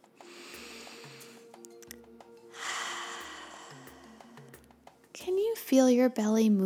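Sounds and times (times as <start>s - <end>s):
faint sustained tones: 0.0s - 5.3s
deep breath in and out during a kids' yoga exercise: 0.2s - 1.5s, 2.5s - 4.6s
speech: 5.2s - 6.6s.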